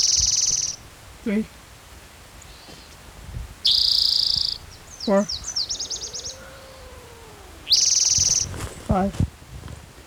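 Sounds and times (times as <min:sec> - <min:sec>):
warbler singing a high buzzy trilled song: 0:00.0 - 0:01.5, 0:02.4 - 0:09.2
speech: 0:01.2 - 0:01.6, 0:05.1 - 0:05.4, 0:08.9 - 0:09.3
faint low sounds: 0:04.6 - 0:09.4.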